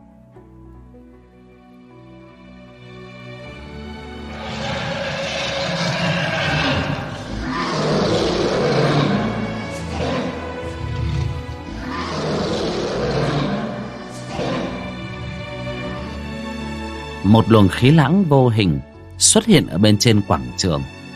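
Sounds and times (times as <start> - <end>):
deep monstrous roar of a mythical dragon vein: 4.2 - 16.8
speech: 17.3 - 21.0.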